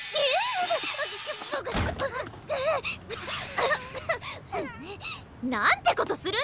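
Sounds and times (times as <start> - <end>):
insect repellent spray hissing: 0.0 - 1.6
speech: 0.6 - 3.8, 5.4 - 6.4.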